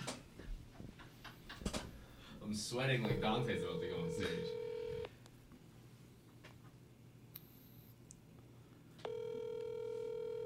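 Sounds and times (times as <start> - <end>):
speech: 2.5 - 4.6
loud steady phone line tone: 3.2 - 5.1, 9.0 - 10.4.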